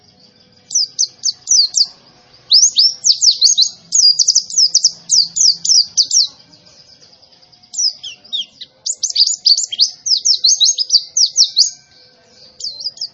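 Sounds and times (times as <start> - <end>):
young white-eye song: 0.0 - 13.1.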